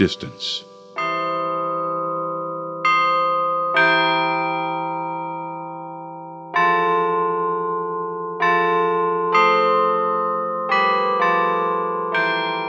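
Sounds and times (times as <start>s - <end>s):
speech: 0.0s - 0.7s
cast bronze carillon bells playing slow melody: 0.0s - 12.6s.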